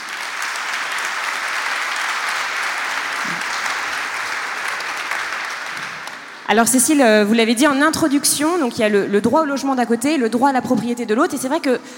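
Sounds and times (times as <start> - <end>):
audience applause for the invited guests of a discussion: 0.0 - 6.5
speech: 6.5 - 11.9.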